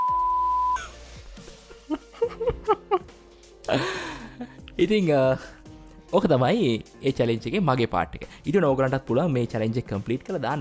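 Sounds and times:
high-pitched censor beep tone: 0.0 - 0.8
speech: 3.7 - 3.9, 4.8 - 10.6.

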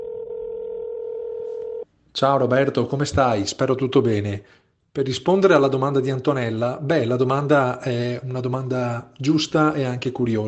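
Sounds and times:
steady electronic telephone tone of a call connecting: 0.0 - 1.9
speech: 2.2 - 10.4.

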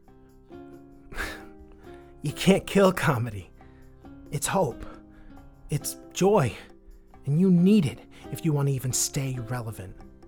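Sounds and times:
soft shaky vocal breath of a woman who has been crying: 0.1 - 2.2, 3.5 - 5.6, 8.0 - 8.4
tearful sniff from a woman who has been crying: 1.1 - 2.2
speech: 2.2 - 3.5, 4.3 - 4.9, 5.7 - 10.1.

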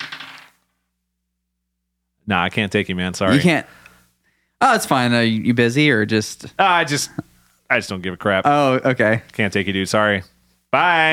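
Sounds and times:
dice tumbling and rattling across a surface: 0.0 - 0.6
speech: 2.3 - 3.8, 4.6 - 11.1.

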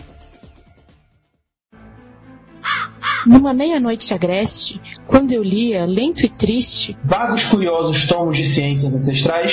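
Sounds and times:
crow cawing: 2.6 - 3.4
speech: 3.2 - 9.5.

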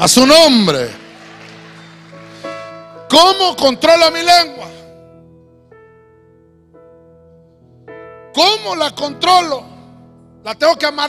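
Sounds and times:
speech: 0.0 - 1.0, 3.1 - 4.8, 8.4 - 9.7, 10.4 - 11.0
audience clapping hands: 0.6 - 3.7.

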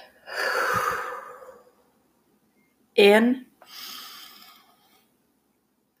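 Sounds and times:
deep breathing in and out as a breathing exercise: 0.0 - 1.9, 3.6 - 5.2
speech: 3.0 - 3.8.

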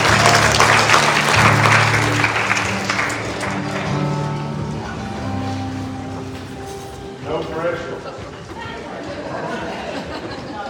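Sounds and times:
church service audience applauding in praise: 0.0 - 4.9
laughter: 7.7 - 10.6.

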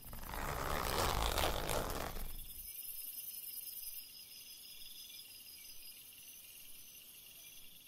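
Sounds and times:
bag zipper slowly opening: 0.0 - 2.4.

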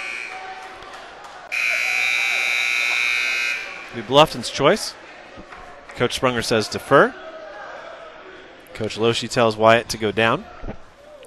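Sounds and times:
end-of-period wrestling match electronic buzzer: 1.5 - 3.9
speech: 3.9 - 5.0, 6.0 - 7.2, 8.8 - 10.8.

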